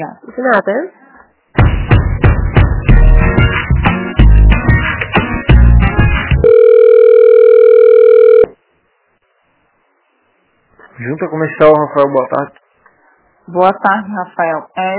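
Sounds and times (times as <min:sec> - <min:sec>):
speech: 0:00.0 - 0:01.0, 0:11.0 - 0:12.6, 0:13.5 - 0:14.9
plucked percussive hold music on a telephone line during a call transfer: 0:01.6 - 0:06.4
long steady telephone line tone during a call transfer: 0:06.4 - 0:08.6.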